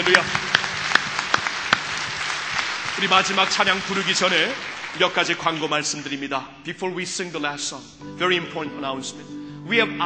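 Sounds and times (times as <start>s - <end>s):
speech: 0.0s - 0.4s, 3.0s - 10.0s
audience applauding: 0.0s - 6.2s
sharp claps: 0.0s - 6.2s.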